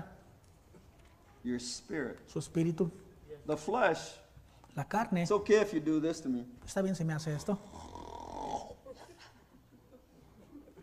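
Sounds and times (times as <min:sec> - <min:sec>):
speech: 0:01.4 - 0:04.2, 0:04.8 - 0:07.9
person imitating a loud rasping snore: 0:07.6 - 0:08.9.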